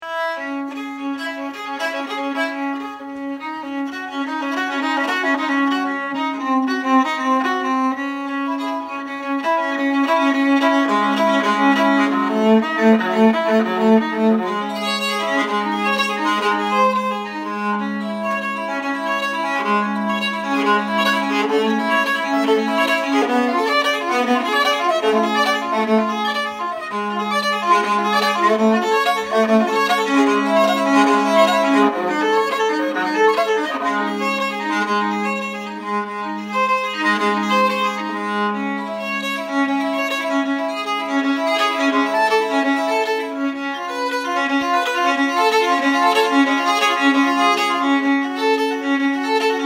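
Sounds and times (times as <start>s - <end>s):
viola d'amore playing: 0.0s - 49.6s.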